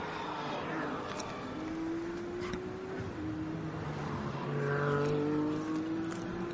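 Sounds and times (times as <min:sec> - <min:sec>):
race car engines droning on a wet-then-drying racing circuit: 0:00.0 - 0:06.5.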